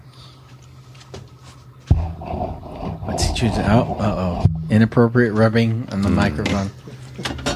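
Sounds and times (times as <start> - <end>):
steady low hum: 1.9 - 5.2
speech: 3.4 - 6.8.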